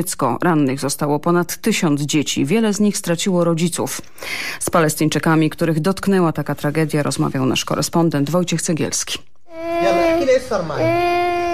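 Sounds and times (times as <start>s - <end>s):
speech: 0.0s - 11.5s
four-year-old girl crying in a high quavering wail: 9.5s - 11.5s.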